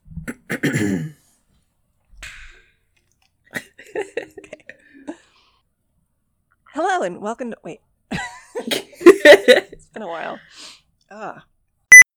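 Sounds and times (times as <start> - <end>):
person clearing throat: 0.2 - 1.2
mouth clicks and swallows of a drink: 2.2 - 3.1
speech: 7.0 - 7.9, 8.7 - 11.5.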